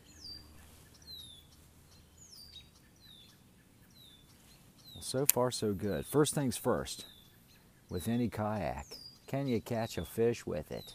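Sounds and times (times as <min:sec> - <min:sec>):
red-winged blackbirds calling: 0:00.0 - 0:10.9
speech: 0:05.0 - 0:07.2, 0:07.9 - 0:10.9.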